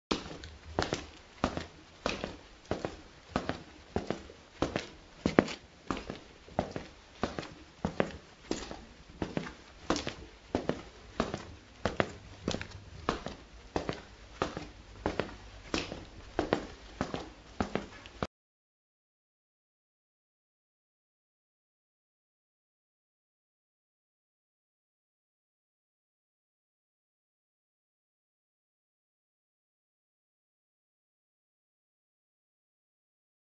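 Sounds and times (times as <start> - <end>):
footsteps with shoes: 0.1 - 18.3.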